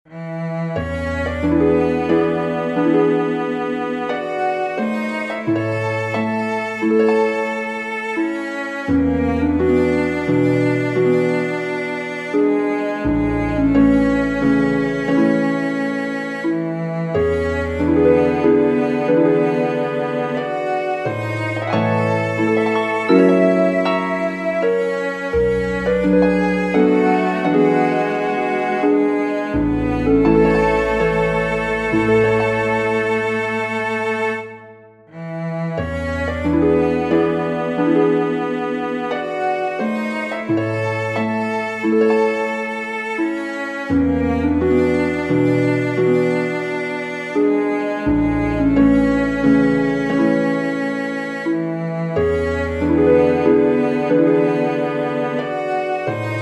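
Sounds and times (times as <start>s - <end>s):
major-key prelude for cello and harp: 0.0s - 56.4s.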